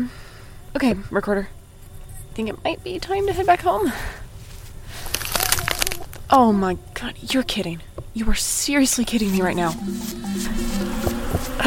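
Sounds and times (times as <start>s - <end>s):
speech: 0.0s - 1.6s, 2.4s - 4.2s, 6.3s - 10.6s
mosquito-like flying insect buzzing: 9.0s - 11.6s.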